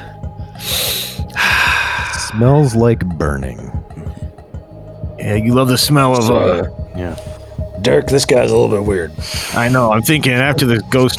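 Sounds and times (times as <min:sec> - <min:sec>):
long deep breath in: 0:00.0 - 0:02.4
soft low thumps: 0:00.0 - 0:11.1
speech: 0:02.3 - 0:04.2, 0:05.2 - 0:11.1.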